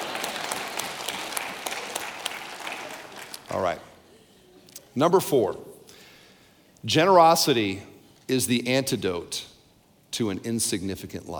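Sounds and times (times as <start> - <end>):
audience applause: 0.0 - 3.8
speech: 3.5 - 3.9, 5.0 - 5.7, 6.8 - 9.5, 10.2 - 11.3.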